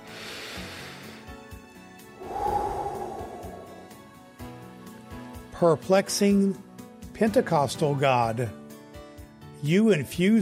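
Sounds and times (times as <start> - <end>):
person taking a slow deep breath: 2.2 - 4.0
speech: 5.6 - 8.6, 9.6 - 10.3.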